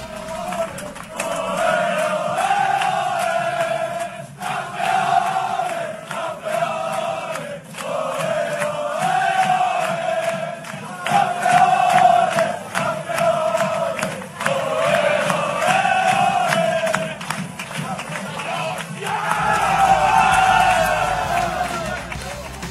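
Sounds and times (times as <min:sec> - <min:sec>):
street parade crowd cheering for football teams: 0:00.0 - 0:22.6.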